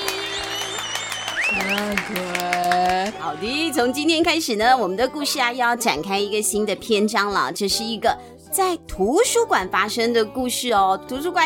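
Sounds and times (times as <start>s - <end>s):
people cheering and whooping: 0.0s - 4.0s
hand claps welcoming a guest: 0.0s - 4.4s
speech: 1.6s - 11.4s.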